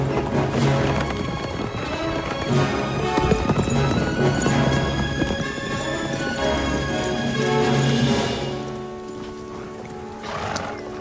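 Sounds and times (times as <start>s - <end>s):
dense continuous background: 0.0s - 10.9s
horse hooves galloping: 0.0s - 10.9s.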